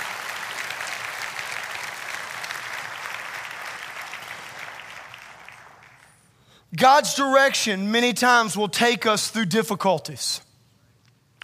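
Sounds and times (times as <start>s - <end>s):
large audience clapping hands: 0.0s - 6.3s
speech: 6.7s - 10.5s.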